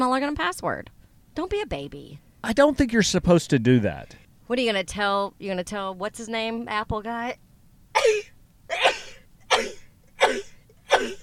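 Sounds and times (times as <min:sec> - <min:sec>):
speech: 0:00.0 - 0:07.4, 0:08.0 - 0:08.3
person sneezing: 0:08.0 - 0:11.2.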